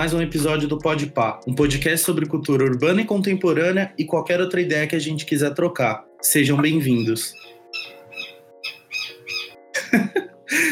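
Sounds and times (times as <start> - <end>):
speech: 0.0 - 7.4
small bird chirping and squawking: 6.8 - 9.6.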